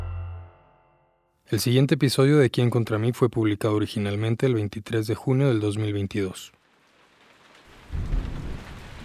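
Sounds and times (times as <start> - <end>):
speech: 1.5 - 6.6, 7.9 - 8.3
steady rain: 6.5 - 9.0
deep thunder rumbling: 7.6 - 9.0.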